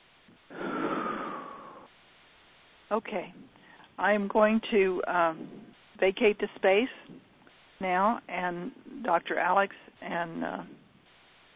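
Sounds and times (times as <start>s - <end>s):
person breathing deeply: 0.4s - 1.9s
speech: 2.9s - 7.2s, 7.8s - 10.8s.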